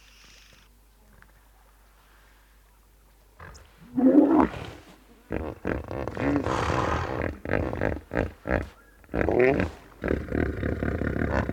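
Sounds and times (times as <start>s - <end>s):
hippopotamuses grunting in a river: 3.4s - 11.5s.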